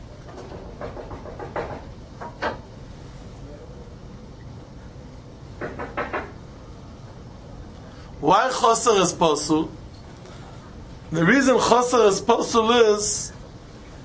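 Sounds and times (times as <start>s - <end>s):
low room hum: 0.0s - 14.0s
soft knocks on a door: 0.5s - 2.6s, 5.6s - 6.4s
speech: 8.3s - 9.8s, 11.1s - 13.3s.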